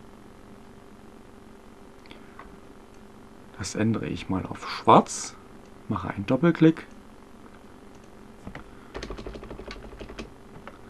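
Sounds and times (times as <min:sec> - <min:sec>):
speech: 0:03.6 - 0:06.9
clicky keystrokes on a computer keyboard: 0:08.5 - 0:10.8.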